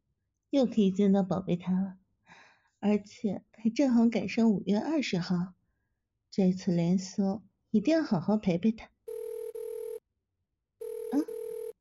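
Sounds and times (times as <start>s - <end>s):
speech: 0.5s - 2.0s, 2.8s - 5.6s, 6.3s - 8.9s
phone ringing with an electronic tone for an incoming call: 9.1s - 10.0s, 10.8s - 11.8s.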